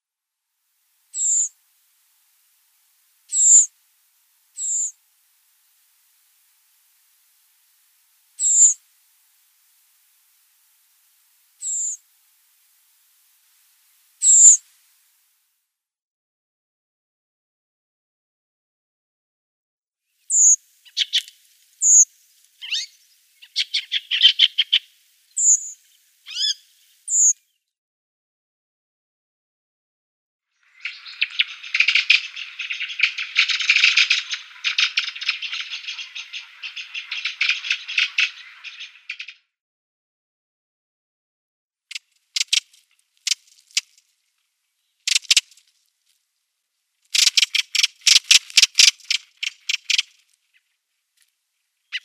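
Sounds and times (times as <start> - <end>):
redwing calls: 1.1 - 1.5, 3.3 - 3.7, 4.6 - 5.0, 8.4 - 8.8, 11.6 - 12.0, 14.2 - 14.6, 20.3 - 27.4, 30.7 - 39.4, 41.9 - 43.9, 45.1 - 45.6, 47.1 - 50.7, 51.8 - 52.0.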